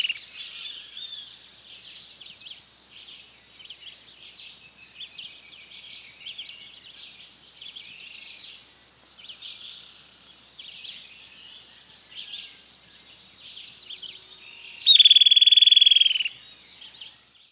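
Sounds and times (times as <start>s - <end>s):
Streak-headed Woodcreeper Lepidocolaptes souleyetii trill: 14.0s - 16.4s.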